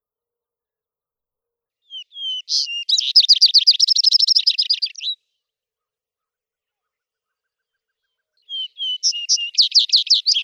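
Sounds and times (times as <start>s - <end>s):
vesper sparrow song with trills: 1.8s - 5.4s, 6.6s - 10.4s.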